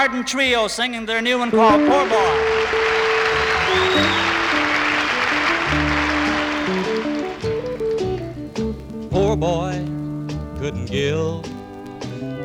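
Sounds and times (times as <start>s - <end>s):
speech: 0.0s - 3.0s, 9.4s - 9.9s, 10.6s - 11.5s
instrumental notes: 1.5s - 12.4s
large audience applause: 1.6s - 8.3s.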